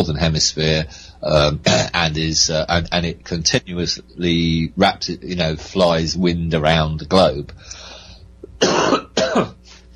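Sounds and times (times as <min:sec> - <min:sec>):
speech: 0:00.0 - 0:07.8, 0:09.4 - 0:09.6
person coughing harshly: 0:01.6 - 0:02.0, 0:08.6 - 0:09.7
faint breathy exhale: 0:07.6 - 0:08.3.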